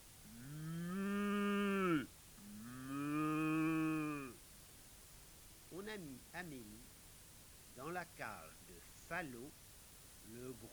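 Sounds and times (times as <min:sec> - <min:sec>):
cow mooing in long loud drawn-out calls: 0:00.3 - 0:04.4
speech: 0:06.0 - 0:07.0, 0:07.8 - 0:09.6, 0:10.2 - 0:10.7.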